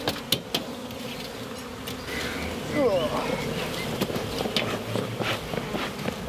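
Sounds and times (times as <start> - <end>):
many honeybees humming at an opened hive: 0.0 - 6.2.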